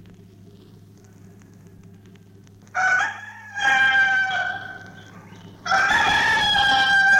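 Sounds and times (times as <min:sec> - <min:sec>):
rooster crowing: 0:02.7 - 0:07.1.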